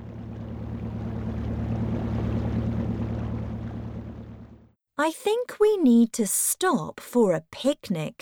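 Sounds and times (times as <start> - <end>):
water churning around a boat on a river: 0.0 - 4.7
boat motor humming on a river: 0.0 - 4.8
speech: 5.0 - 8.1.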